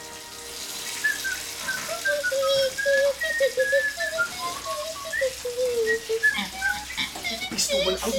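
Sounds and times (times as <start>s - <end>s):
water running from a tap: 0.0s - 8.1s
person whistling a wandering melody: 1.0s - 7.0s
speech: 7.7s - 8.1s.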